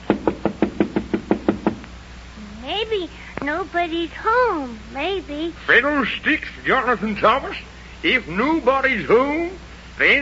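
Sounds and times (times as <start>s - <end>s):
firm knocks on a locked wooden door in a tall wall: 0.0s - 1.8s
speech: 2.8s - 10.2s.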